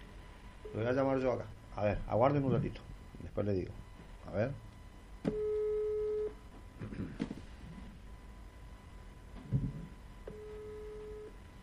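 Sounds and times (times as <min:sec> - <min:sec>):
speech: 0:00.7 - 0:04.6, 0:05.2 - 0:05.4
faint low telephone ringback tone as a call is placed: 0:05.3 - 0:06.3, 0:10.3 - 0:11.3.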